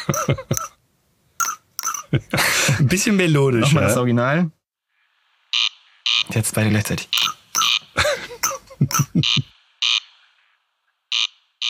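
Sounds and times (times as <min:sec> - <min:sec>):
laughter: 0:00.0 - 0:00.7, 0:08.0 - 0:09.5
speech: 0:00.1 - 0:00.7, 0:02.1 - 0:04.6, 0:06.3 - 0:07.4, 0:08.9 - 0:09.6
comb scraping imitating a rare night bird's rasping call: 0:05.0 - 0:06.3, 0:07.0 - 0:11.6.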